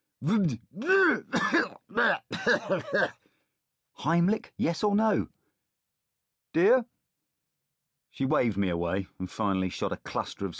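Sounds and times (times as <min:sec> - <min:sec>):
speech: 0:00.2 - 0:03.2, 0:04.0 - 0:05.4, 0:06.6 - 0:06.9, 0:08.2 - 0:10.5
harsh throaty coughs and hacking noises: 0:00.8 - 0:03.2.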